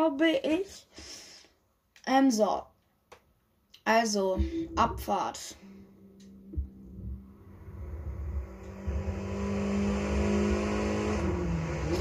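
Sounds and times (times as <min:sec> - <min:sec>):
speech: 0:00.0 - 0:01.2, 0:02.1 - 0:02.7, 0:03.9 - 0:05.8
video game Volkswagen GTI engine accelerating: 0:06.5 - 0:12.0.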